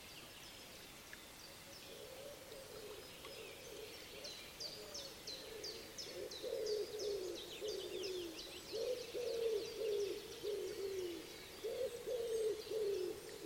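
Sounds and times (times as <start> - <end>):
common wood pigeon cooing: 5.5 - 13.4.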